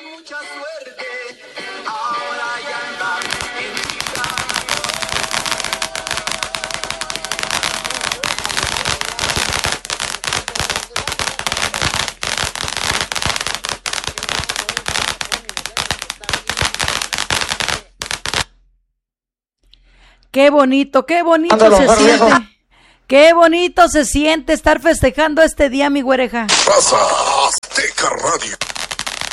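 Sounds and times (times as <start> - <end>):
firecrackers bursting in a celebration: 1.7 - 18.6, 21.6 - 22.4, 26.5 - 26.9, 27.6 - 29.3
speech: 20.4 - 22.5, 23.1 - 28.6.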